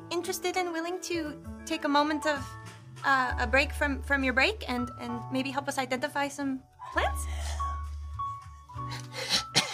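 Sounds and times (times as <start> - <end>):
speech: 0.3 - 7.3
man's raspy cough breaking into a wheezy laugh: 9.2 - 9.6.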